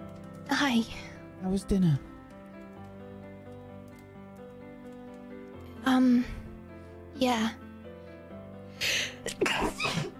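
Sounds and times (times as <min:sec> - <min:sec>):
speech: 0:00.5 - 0:02.1, 0:06.0 - 0:06.4, 0:07.2 - 0:07.6
sharp sneeze with breathy intake: 0:09.4 - 0:10.1.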